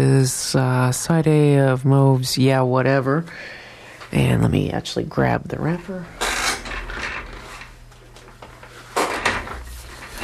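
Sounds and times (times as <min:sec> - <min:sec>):
speech: 0:00.2 - 0:06.2
chair shifting, creaking and scraping while reaching for something: 0:06.1 - 0:10.2.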